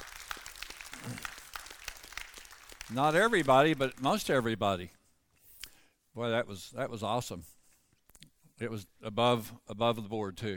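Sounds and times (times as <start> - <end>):
breakfast guests clapping on Christmas morning: 0.0 - 4.5
speech: 2.9 - 5.0, 6.2 - 7.5, 8.6 - 10.5.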